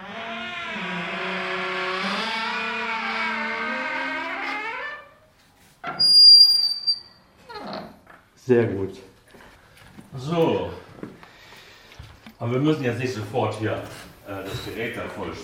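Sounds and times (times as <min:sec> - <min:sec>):
apartment bathroom door in Berlin squeaking: 0:00.0 - 0:08.0
speech: 0:08.5 - 0:09.1, 0:10.2 - 0:11.1, 0:12.4 - 0:15.4.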